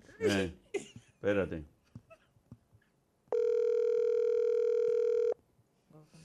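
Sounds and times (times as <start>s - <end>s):
speech: 0.2s - 0.6s, 1.2s - 1.8s
outgoing phone call ringback tone: 3.3s - 5.4s.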